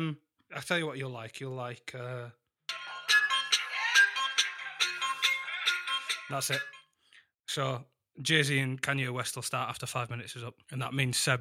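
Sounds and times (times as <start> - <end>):
speech: 0.0 - 2.4, 6.3 - 6.8, 7.5 - 11.3
bright bouncy electronic phone ringtone melody: 2.7 - 7.0.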